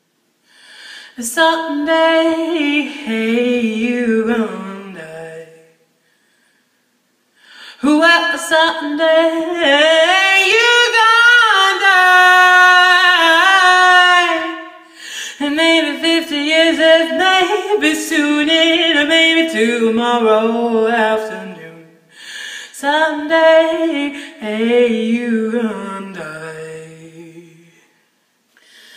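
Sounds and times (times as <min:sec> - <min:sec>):
soulful jazzy a cappella original song: 0:00.5 - 0:06.2, 0:07.4 - 0:28.0.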